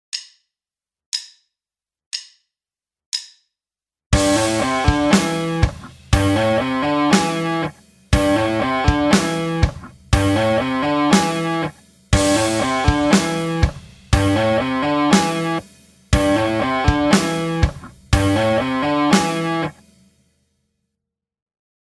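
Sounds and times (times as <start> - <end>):
guitar playing pentatonics: 4.2 - 19.8.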